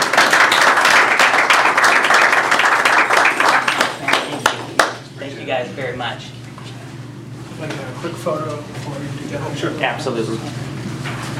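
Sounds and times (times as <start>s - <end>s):
audience applause: 0.0s - 5.0s
speech: 5.6s - 6.4s, 7.6s - 10.6s.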